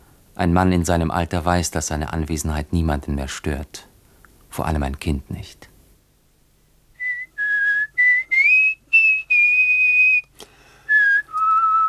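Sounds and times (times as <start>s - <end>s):
speech: 0.4s - 3.9s, 4.5s - 5.7s
person whistling a tune: 7.0s - 10.3s, 10.9s - 11.8s.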